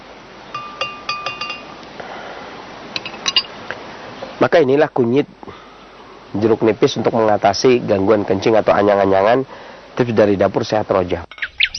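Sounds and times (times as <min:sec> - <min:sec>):
spoon stirring a turmeric and lime drink in a glass: 0:00.5 - 0:01.8, 0:03.0 - 0:03.5
speech: 0:04.4 - 0:05.6, 0:06.3 - 0:11.5.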